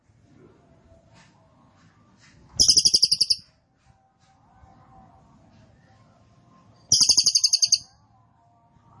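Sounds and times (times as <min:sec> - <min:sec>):
cililin bird singing high buzzy chattering trills: 0:02.6 - 0:03.4, 0:06.9 - 0:07.8.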